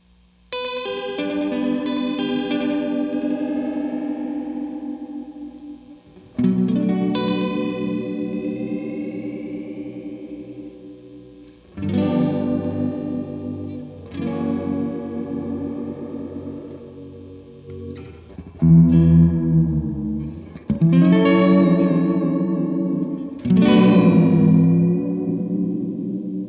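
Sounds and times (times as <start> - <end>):
electric guitar with heavy chorus and reverb through two amps playing sustained chords: 0.0 - 26.4.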